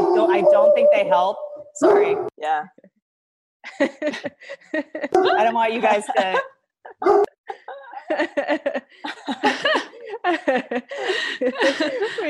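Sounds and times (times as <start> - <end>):
dogs barking in yappy bursts: 0.0 - 2.3, 7.0 - 7.4
speech: 0.4 - 2.9, 3.7 - 12.2
laughter: 3.6 - 12.2.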